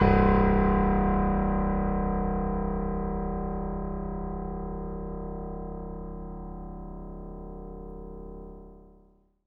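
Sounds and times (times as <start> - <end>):
acoustic piano: 0.0 - 6.1.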